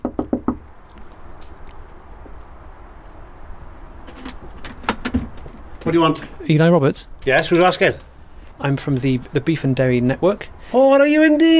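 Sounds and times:
knocking on the wooden front door of a semi-detached house: 0.0 - 0.6
faint traffic-like noise: 0.0 - 11.5
low outdoor hum: 0.0 - 11.5
speech: 5.9 - 11.5.

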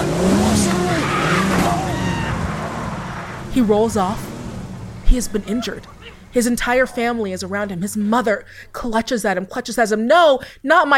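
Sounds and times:
car tires squealing and skidding: 0.0 - 8.6
car engine roaring: 0.0 - 8.8
indistinct voices: 0.1 - 9.7
speech: 3.6 - 4.3, 5.1 - 10.9.

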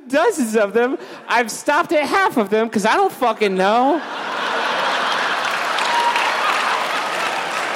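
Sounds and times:
speech: 0.1 - 4.2
live audience laughing: 3.8 - 7.7
live audience applause: 4.3 - 7.7.

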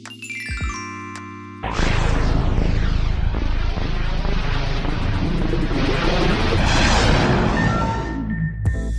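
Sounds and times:
bright glockenspiel chimes: 0.0 - 1.6
recorded thunder played in reverse by code: 1.6 - 8.4.

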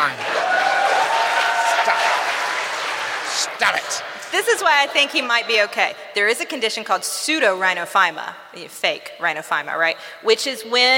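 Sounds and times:
crowd applause: 0.0 - 4.4
speech: 3.7 - 10.9.

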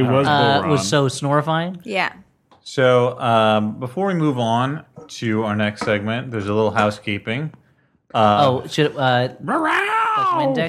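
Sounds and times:
speech: 0.0 - 10.6
person imitating house cat meows: 9.5 - 10.6.

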